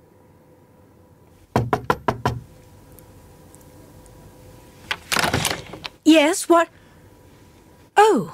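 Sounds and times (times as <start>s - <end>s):
knocking on the wooden door of a ship cabin on the promenade deck: 1.6s - 2.5s
speech: 6.1s - 6.8s, 8.0s - 8.3s.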